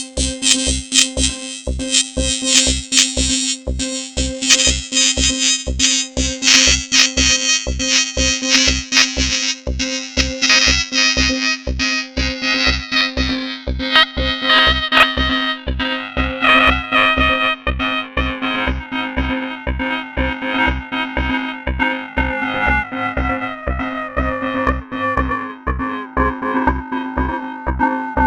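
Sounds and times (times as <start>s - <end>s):
Acidbox II synthesizer loop: 0.2s - 28.2s.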